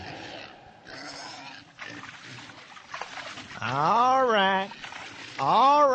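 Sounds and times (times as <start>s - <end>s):
pig squealing at feeding: 0.0s - 2.1s
pigs grunting and snorting at feeding: 0.0s - 5.9s
speech: 3.7s - 4.1s.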